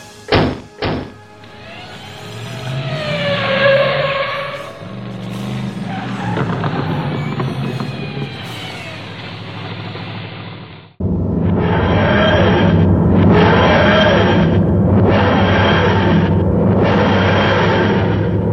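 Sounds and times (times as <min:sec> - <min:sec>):
car engine revving hard and pulling away: 0:00.0 - 0:18.5
tires skidding with a rising squeal: 0:00.0 - 0:18.5
car doors slamming: 0:00.3 - 0:01.3.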